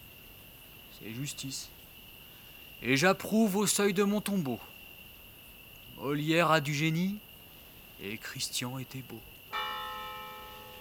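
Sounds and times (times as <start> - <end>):
faint hiss: 0.0 - 10.7
speech: 1.0 - 1.8, 2.8 - 4.7, 6.0 - 7.3, 8.0 - 9.3
convent church bell ringing: 9.5 - 10.7.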